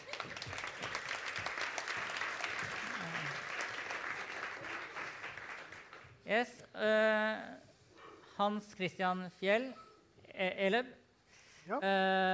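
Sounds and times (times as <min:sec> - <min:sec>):
audience applause: 0:00.0 - 0:06.2
speech: 0:06.3 - 0:07.6, 0:08.4 - 0:09.8, 0:10.4 - 0:11.0, 0:11.7 - 0:12.3.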